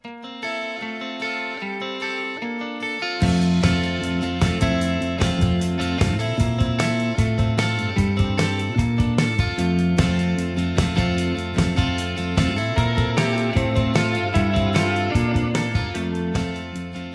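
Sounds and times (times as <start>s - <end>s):
chiming guitar: 0.0s - 17.1s
steady drums in a mellow indie band tune: 3.2s - 17.1s
warm bass line: 3.2s - 17.1s.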